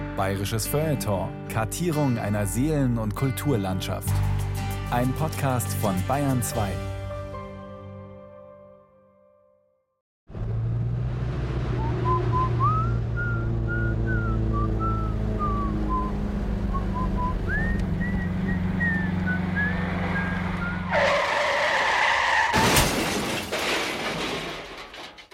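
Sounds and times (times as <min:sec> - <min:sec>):
speech: 0:00.2 - 0:04.3, 0:04.9 - 0:06.9
car engine roaring: 0:10.3 - 0:21.8
car tires squealing in a skid: 0:11.2 - 0:25.0
car crash impact and shattering: 0:22.3 - 0:25.3.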